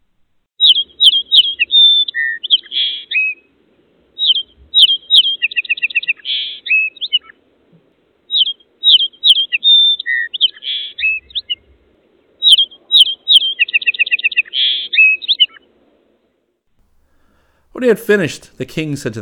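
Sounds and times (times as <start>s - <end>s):
robin redbreast singing on a windowsill: 0.0s - 3.5s, 4.2s - 7.4s, 8.3s - 11.8s, 12.4s - 15.7s
speech: 17.8s - 19.1s.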